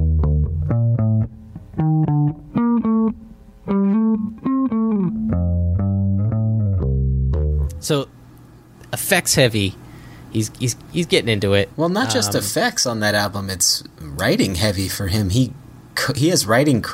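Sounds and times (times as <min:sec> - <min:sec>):
plain bass guitar lick without synth effect: 0:00.0 - 0:07.9
speech: 0:07.9 - 0:08.1, 0:09.0 - 0:16.9.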